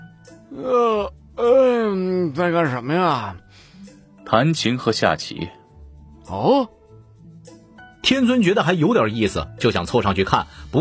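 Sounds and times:
man who has just woken yawning aloud: 0.4 - 2.3
speech: 0.5 - 3.4, 4.3 - 5.6, 6.3 - 6.8, 8.0 - 10.7.

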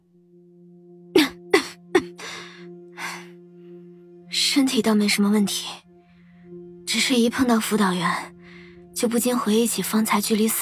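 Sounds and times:
weak sickly person coughing: 1.2 - 2.4
speech: 4.6 - 5.8, 7.1 - 8.4, 9.0 - 10.5.

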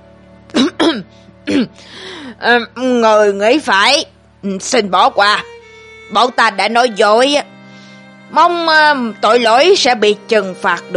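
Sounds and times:
person coughing behind a covered mouth: 0.5 - 1.8
speech: 0.9 - 5.5, 6.1 - 7.5, 8.3 - 10.9.

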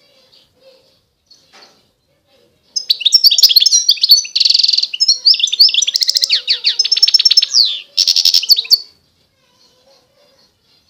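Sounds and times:
wild European goldfinch singing: 2.8 - 8.9.

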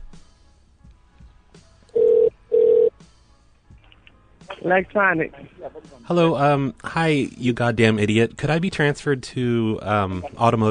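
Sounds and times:
phone line ringing through the handset during a call transfer: 2.0 - 2.9
speech: 4.6 - 10.6.

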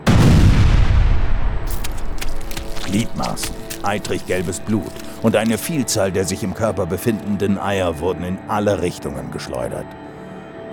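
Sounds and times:
loud grenade explosion with heavy low-end boom: 0.0 - 3.2
debris-like rumbling and crackling after grenade explosion: 0.1 - 6.3
speech: 2.9 - 10.0.

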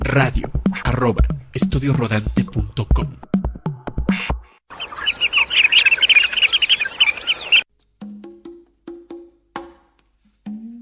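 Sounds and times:
speech: 0.2 - 3.3
birds singing: 4.7 - 7.6.

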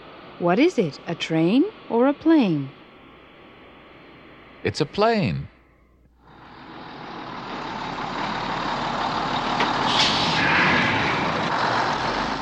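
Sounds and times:
speech: 0.4 - 2.8, 4.6 - 5.5
bus engine rumbling: 6.2 - 12.3
bus air brake hiss: 9.8 - 11.4.

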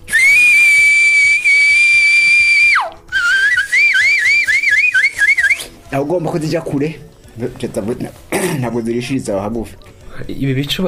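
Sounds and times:
piercing whistling in a traditional cattle song: 0.0 - 5.8
speech: 6.0 - 10.8.

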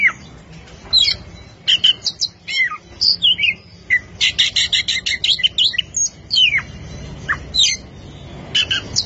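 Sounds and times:
Oriental magpie-robin singing: 0.0 - 9.0.

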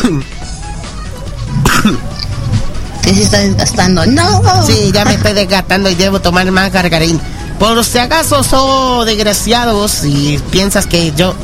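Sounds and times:
person coughing: 0.0 - 0.2, 1.6 - 2.3
throat clearing: 0.0 - 0.3, 1.6 - 2.6
speech: 1.9 - 2.2, 3.1 - 11.4.

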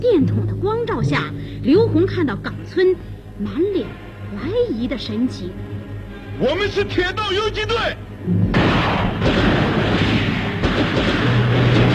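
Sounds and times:
speech: 0.0 - 5.7, 6.4 - 9.4
light machine gun fire in a guerrilla battle in the water: 8.5 - 11.9.

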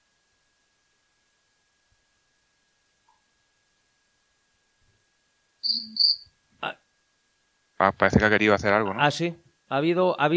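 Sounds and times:
cricket chirping: 5.6 - 6.3
speech: 5.7 - 6.8, 7.8 - 10.3.

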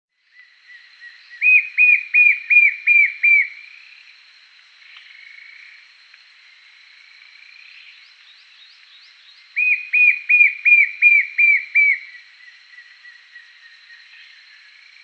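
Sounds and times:
white-shouldered fire-eye whistled call: 0.4 - 3.6, 9.6 - 13.2.

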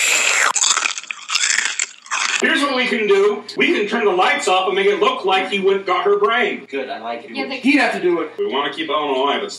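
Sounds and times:
wet chewing and smacking mouth noises: 0.1 - 2.4
speech: 2.9 - 9.5.

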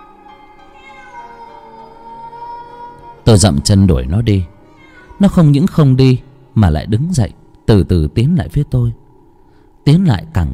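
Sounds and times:
cat meowing toward a house: 0.5 - 2.9, 4.6 - 5.6
speech: 3.3 - 4.6, 5.2 - 9.0, 9.8 - 10.5.

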